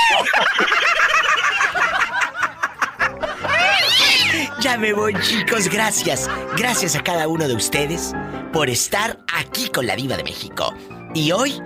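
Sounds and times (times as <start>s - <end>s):
laughter: 0.0s - 7.2s
cat meowing: 3.6s - 4.3s
speech: 4.7s - 11.6s.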